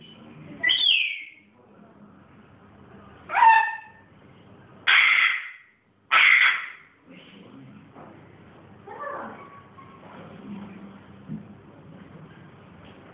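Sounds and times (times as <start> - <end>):
pet grey parrot screeching and squawking: 0.6 - 1.3, 3.3 - 4.0, 4.9 - 6.9.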